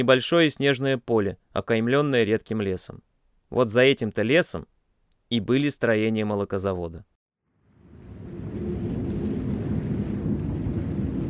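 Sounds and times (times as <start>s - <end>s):
speech: 0.0s - 4.7s, 5.3s - 7.1s
strong wind roaring: 7.7s - 11.2s.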